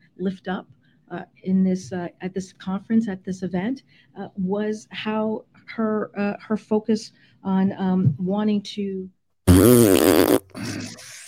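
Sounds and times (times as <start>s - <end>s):
speech: 0.2s - 10.9s
loud buzzy fart sound effect: 9.5s - 11.0s.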